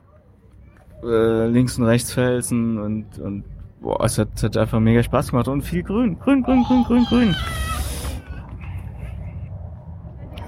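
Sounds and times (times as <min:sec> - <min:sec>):
speech: 0:01.0 - 0:07.7
child whining after being denied ice cream: 0:06.5 - 0:08.2.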